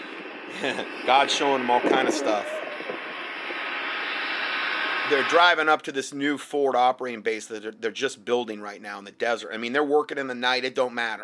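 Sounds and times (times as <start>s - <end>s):
generator running at night at a forward operating base in the desert: 0.0s - 5.2s
laughter: 0.5s - 2.4s
speech: 0.6s - 2.6s, 5.1s - 11.2s.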